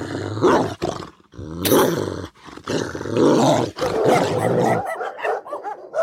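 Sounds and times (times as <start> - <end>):
several dogs growling and snarling aggressively: 0.0 - 6.0
dogs with sharp barks: 3.8 - 6.0.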